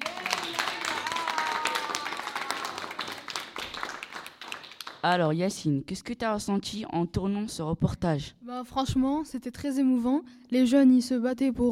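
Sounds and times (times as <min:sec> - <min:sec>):
audience applauding: 0:00.0 - 0:05.1
speech: 0:05.0 - 0:11.7.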